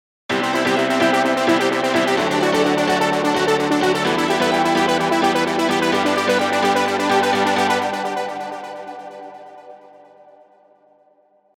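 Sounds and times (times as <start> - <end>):
piano arpeggio: 0.3 - 9.3.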